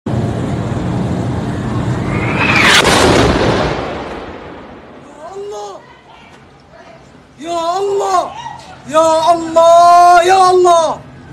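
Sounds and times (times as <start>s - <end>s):
massive explosion at a hospital in Gaza City: 0.1s - 5.5s
speech: 8.2s - 11.0s.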